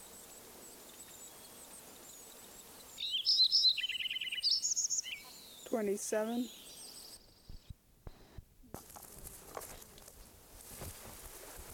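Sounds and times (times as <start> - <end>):
Lincoln's sparrow singing: 2.2 - 7.8
speech: 5.7 - 6.6.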